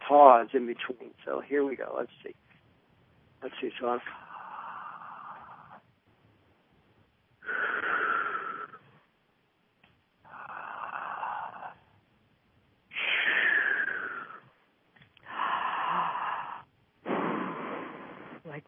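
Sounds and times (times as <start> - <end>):
speech: 0.1 - 2.5, 3.4 - 4.2
deep inhales and exhales during a breathing exercise: 4.0 - 5.9, 7.4 - 9.1, 12.9 - 14.6, 15.2 - 18.4.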